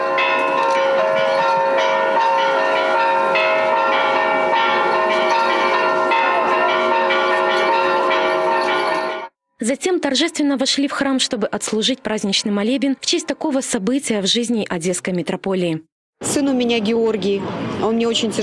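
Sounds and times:
church bells pealing in Odessa welcoming an ark of holy relics: 0.0 - 9.4
speech: 9.6 - 18.4.

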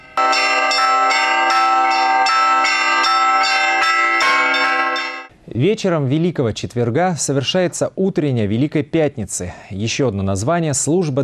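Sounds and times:
church bells on a temporary belfry ringing a peal: 0.0 - 5.3
speech: 5.6 - 11.2.

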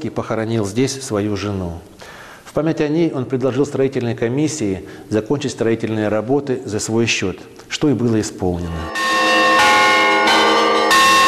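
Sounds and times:
speech: 0.0 - 9.2
main cathedral bell tolling: 8.6 - 11.2.

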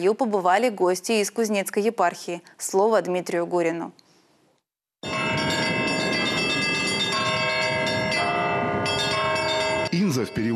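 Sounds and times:
speech: 0.0 - 4.0, 9.9 - 10.5
cathedral church bells ringing in a peal: 5.0 - 10.5.

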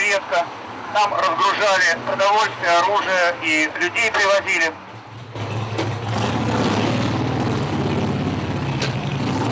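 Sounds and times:
speech: 0.2 - 4.9
column of motorcycles rumbling past with engines running: 5.4 - 9.4.

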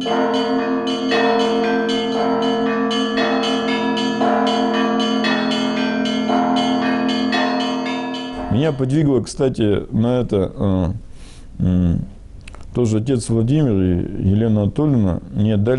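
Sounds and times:
speech: 0.0 - 0.5, 8.6 - 12.1, 12.8 - 15.7
church bells ringing: 0.0 - 9.2.

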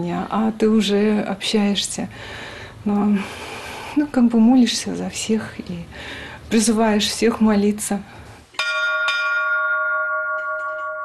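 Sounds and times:
speech: 0.0 - 8.2
church bells ringing: 8.6 - 11.0.

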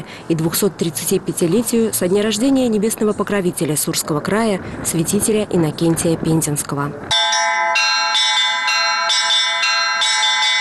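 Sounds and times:
speech: 0.1 - 7.4
church bells ringing at an Orthodox culture festival in Penza Russia: 7.1 - 10.5.

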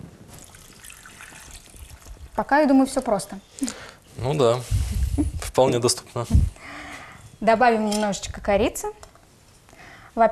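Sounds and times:
water pouring into a saucepan holding apples for cooking kissel: 0.4 - 2.4
speech: 2.4 - 6.5, 7.4 - 9.0, 10.2 - 10.3.

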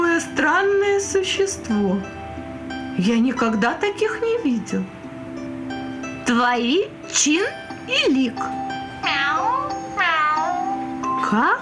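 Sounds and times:
speech: 0.4 - 2.2, 3.0 - 5.0, 6.3 - 9.2, 11.3 - 11.5
cat meowing: 9.0 - 10.8.

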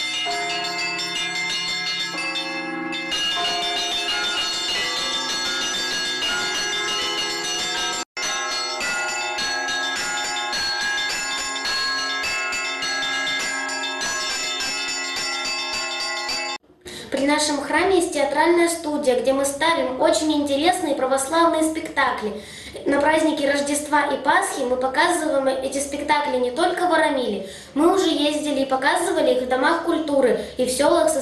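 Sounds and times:
church bells ringing in a peal: 0.0 - 16.6
speech: 17.4 - 31.2.

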